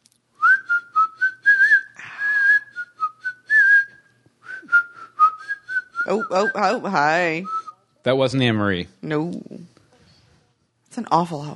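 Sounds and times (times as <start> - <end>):
person whistling a short bouncy tune: 0.4 - 6.8, 7.4 - 7.8
speech: 6.1 - 9.5, 11.0 - 11.5.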